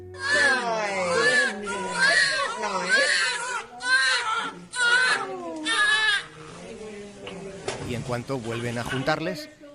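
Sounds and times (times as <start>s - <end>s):
newborn twin babies crying together: 0.0s - 6.4s
speech: 8.1s - 9.6s.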